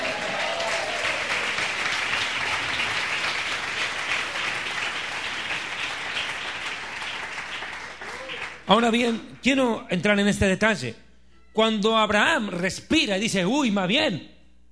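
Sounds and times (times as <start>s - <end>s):
audience applauding: 0.0s - 9.4s
speech: 8.7s - 11.0s, 11.6s - 14.3s.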